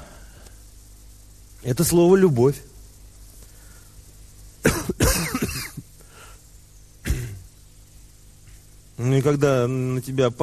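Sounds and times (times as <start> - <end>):
speech: 1.6 - 2.7, 9.2 - 10.4
deliberate throat-clearing cough: 4.6 - 5.8, 7.0 - 7.5.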